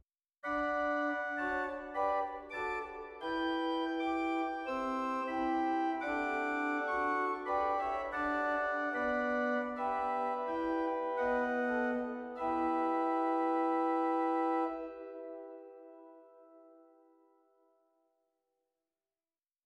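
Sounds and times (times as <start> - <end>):
pipe organ Rugwerk Octaav 4 stop in Zwolle: 0.5 - 16.6.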